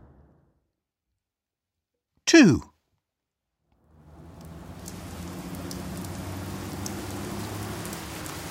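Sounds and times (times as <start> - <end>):
speech: 2.3 - 2.7
steady rain falling: 3.8 - 8.4.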